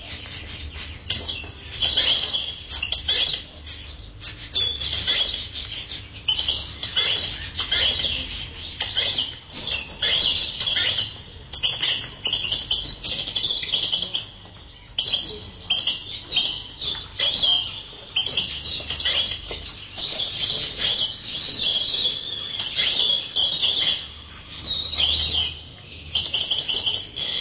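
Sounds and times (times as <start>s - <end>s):
birds chirping and twittering: 0.0s - 27.4s.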